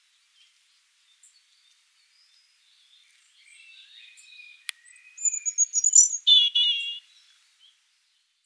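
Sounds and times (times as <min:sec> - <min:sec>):
European robin Erithacus rubecula singing: 0:01.1 - 0:07.8.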